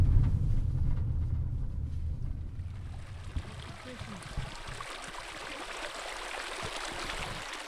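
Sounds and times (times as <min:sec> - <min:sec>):
low rumble: 0:00.0 - 0:04.9
spring water flowing at the surface in central Nevada: 0:02.6 - 0:07.6.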